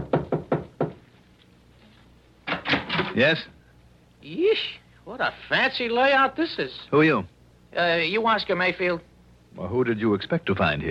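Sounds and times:
knocking on a door: 0:00.0 - 0:01.0
speech: 0:03.2 - 0:03.6, 0:04.2 - 0:10.8.

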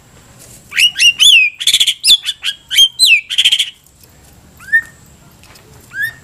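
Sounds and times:
White-rumped shama song with whistled phrases and buzzy trills: 0:00.7 - 0:03.8, 0:04.6 - 0:05.0, 0:05.9 - 0:06.2.

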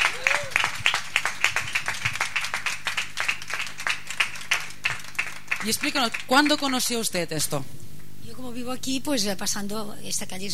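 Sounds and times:
group applauding at an open-house day at a squatted social centre: 0:00.0 - 0:07.0
steady low hum: 0:00.0 - 0:10.5
speech: 0:05.6 - 0:07.8, 0:08.4 - 0:10.5.

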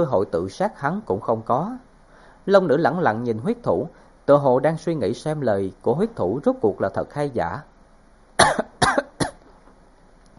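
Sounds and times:
speech: 0:00.0 - 0:07.7
violent dry coughing: 0:08.4 - 0:09.4.

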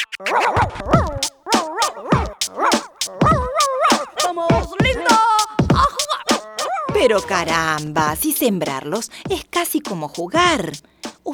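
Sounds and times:
dog barking and yipping: 0:00.0 - 0:07.5
speech: 0:00.2 - 0:00.9, 0:07.0 - 0:11.3.

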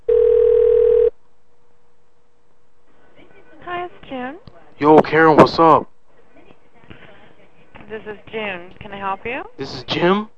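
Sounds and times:
telephone tone as a call is placed to a number in Las Vegas: 0:00.0 - 0:01.1
speech: 0:04.8 - 0:05.9, 0:07.9 - 0:10.3.

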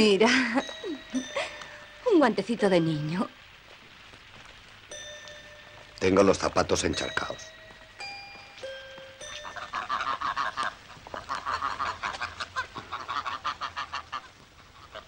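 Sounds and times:
speech: 0:00.0 - 0:00.8, 0:02.2 - 0:03.4, 0:06.0 - 0:07.5
ducks quacking: 0:09.2 - 0:15.0.

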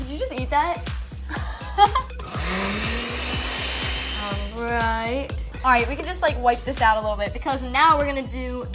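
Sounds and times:
speech: 0:00.2 - 0:01.0, 0:04.3 - 0:08.7
blender blending frozen strawberries with vanilla yogurt: 0:02.2 - 0:04.6.

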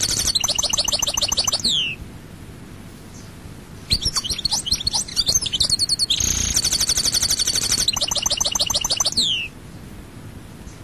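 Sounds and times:
European goldfinch singing: 0:00.0 - 0:02.0, 0:03.0 - 0:09.6.

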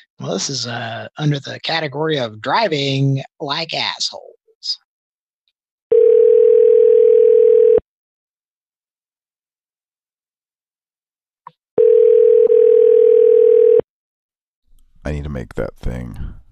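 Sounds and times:
speech: 0:00.0 - 0:04.8, 0:15.0 - 0:16.4
telephone dial tone while calling a number: 0:05.9 - 0:07.8, 0:11.8 - 0:13.8.

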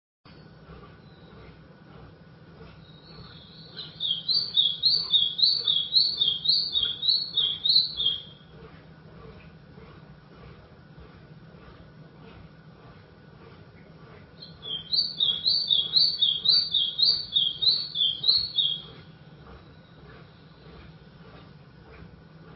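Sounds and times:
white-throated seedeater song with bright rippling notes: 0:00.4 - 0:22.5.

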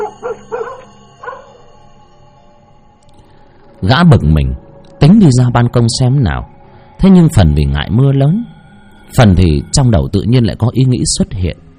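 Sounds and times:
trained dog barking in choked bursts on a rainy night: 0:00.0 - 0:01.6
speech: 0:03.8 - 0:08.5, 0:09.1 - 0:11.7.

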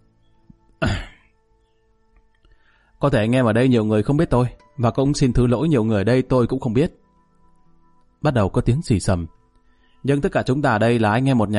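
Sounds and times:
man clearing his throat at a gathering: 0:00.8 - 0:01.3
speech: 0:03.0 - 0:07.0, 0:08.2 - 0:09.4, 0:10.0 - 0:11.5.

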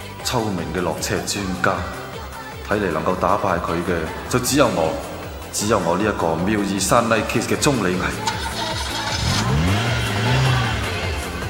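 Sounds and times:
speech: 0:00.3 - 0:02.0, 0:02.7 - 0:08.4
racing car engine revving at the finish line of a street race: 0:07.7 - 0:11.4.

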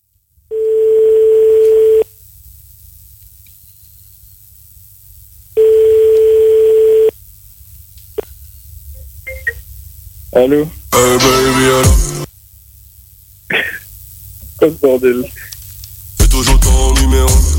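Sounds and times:
telephone line tone during a call attempt: 0:00.5 - 0:02.0, 0:05.6 - 0:07.1
faint telephone line hiss: 0:01.4 - 0:17.3
speech: 0:10.4 - 0:12.1, 0:14.6 - 0:15.6, 0:16.8 - 0:17.5.

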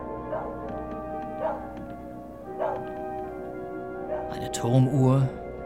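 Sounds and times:
dog barking near a lonely house: 0:00.1 - 0:00.6, 0:01.3 - 0:01.8, 0:02.5 - 0:02.9, 0:04.1 - 0:04.3
speech: 0:04.3 - 0:05.4.

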